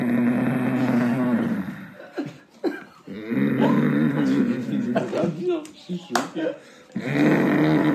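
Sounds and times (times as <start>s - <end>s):
voice imitating a father's loud snoring: 0.0s - 2.0s, 3.1s - 4.8s, 7.0s - 7.9s
laughter: 2.0s - 6.6s.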